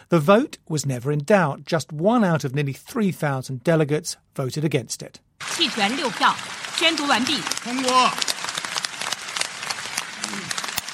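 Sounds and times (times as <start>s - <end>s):
speech: 0.1s - 8.3s
large crowd applauding in a large congress hall: 5.4s - 10.9s.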